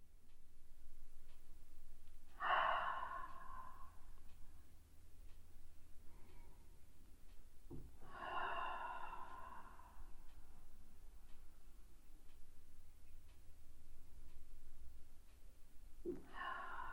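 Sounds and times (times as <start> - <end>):
slow breathing through a gently constricted throat: 2.2 - 4.8, 6.0 - 7.0, 7.7 - 12.4, 16.0 - 16.9.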